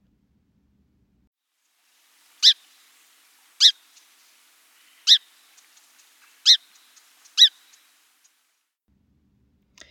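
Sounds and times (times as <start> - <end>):
song sparrow chip calls: 2.2 - 8.4.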